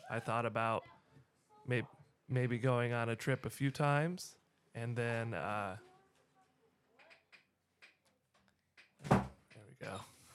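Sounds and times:
speech: 0.1 - 1.0, 1.6 - 5.9, 9.8 - 10.1
door shutting with a loud solid thud: 9.0 - 9.4.

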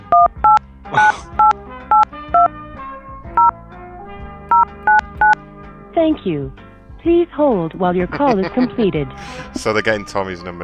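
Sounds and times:
touch-tone DTMF beeps keying a phone number into an automated phone line: 0.1 - 2.5, 4.5 - 5.4
speech: 6.0 - 10.6
laughter: 7.9 - 10.1.

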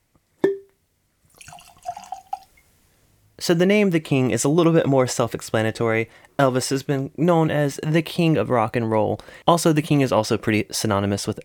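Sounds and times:
glass clinking: 0.4 - 0.7, 1.3 - 2.6
young Indiana rye whiskey glugging into a glass: 1.3 - 2.6
speech: 3.5 - 11.4.

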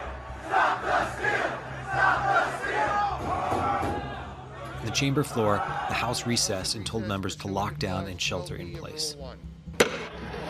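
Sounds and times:
crowd of rioters shouting as they storm the US Capitol: 0.0 - 6.6
speech: 4.8 - 9.5.

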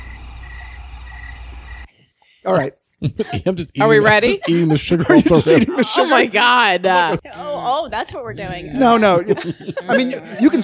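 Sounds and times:
chorus of crickets chirping at night: 0.0 - 1.9
speech: 2.4 - 10.6
laughter: 3.0 - 10.6.

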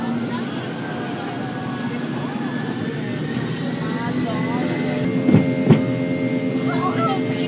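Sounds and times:
faint voices murmuring: 0.0 - 7.4
humming whine in an airplane cabin: 0.0 - 7.4
loud jet engine roar in an airplane cabin during takeoff: 0.0 - 7.4
sharp thumps in an airplane cabin: 5.2 - 5.9.

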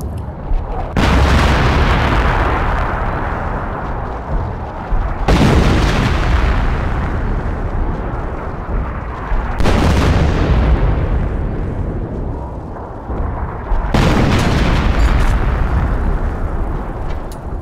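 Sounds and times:
long deep rumble: 0.0 - 17.6
underground mine detonations at a trench position: 0.2 - 17.6.

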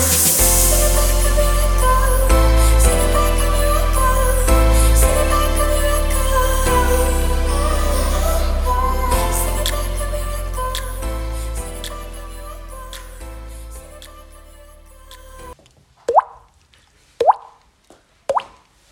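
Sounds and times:
music playing: 0.0 - 15.6.

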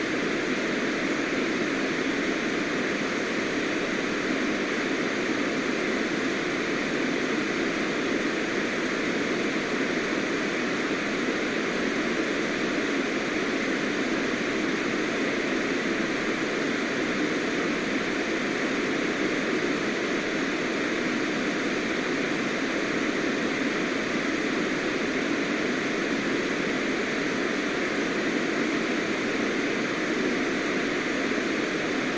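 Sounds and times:
white noise hiss with faint tonal bands: 0.0 - 32.1.

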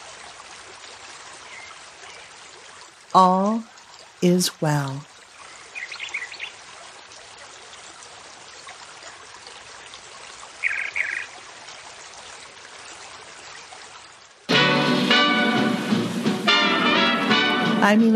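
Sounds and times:
flowing river water: 0.0 - 18.1
speech: 3.1 - 5.1, 17.9 - 18.1
bird calls: 5.5 - 6.6, 10.6 - 11.3.

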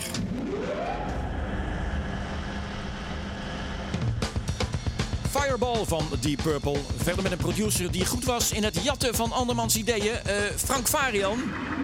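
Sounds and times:
electric fan motor spinning up and whirring: 0.2 - 5.2
speech: 5.4 - 11.8.

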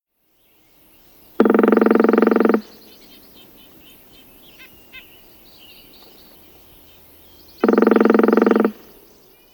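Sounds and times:
faint bird calls: 1.3 - 9.5
northern flicker drumming: 1.4 - 3.0, 7.6 - 9.2.

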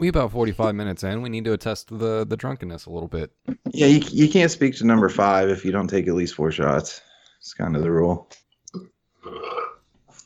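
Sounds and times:
speech: 0.0 - 9.6
loud drawn-out burp after drinking whiskey: 8.8 - 9.9.

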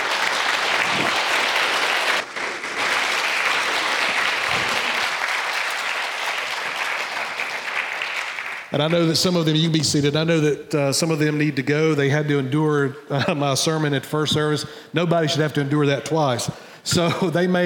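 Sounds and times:
large audience standing ovation applause: 0.0 - 9.2
speech: 8.8 - 17.6.

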